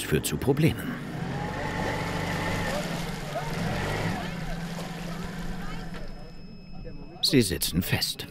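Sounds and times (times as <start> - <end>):
small boat motor running at half power on an overgrown canal: 0.0 - 7.2
speech: 0.1 - 1.1, 7.3 - 8.2
water splashing on an overgrown canal: 2.0 - 5.9.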